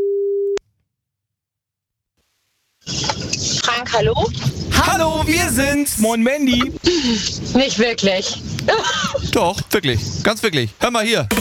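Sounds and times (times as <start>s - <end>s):
steady low telephone beep as a radio station dials a listener: 0.0s - 0.6s
speech: 3.8s - 11.3s.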